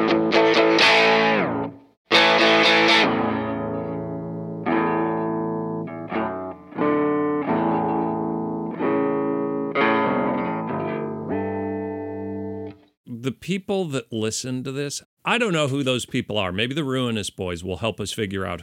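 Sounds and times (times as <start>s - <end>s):
1966 Fender Stratocaster electric guitar through distortion and a whammy pedal: 0.0s - 12.9s
speech: 13.4s - 18.6s.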